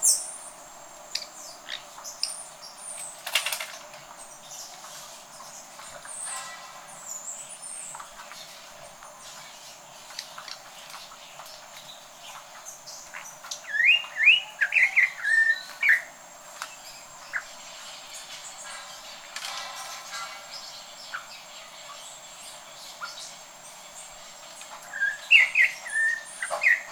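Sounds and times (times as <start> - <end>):
Campo troupial whistled calls: 13.6 - 16.1, 24.9 - 26.8.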